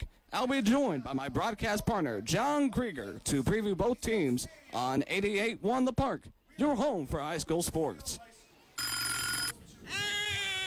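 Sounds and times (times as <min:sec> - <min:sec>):
speech: 0:00.3 - 0:08.3
telephone ringing: 0:08.8 - 0:09.6.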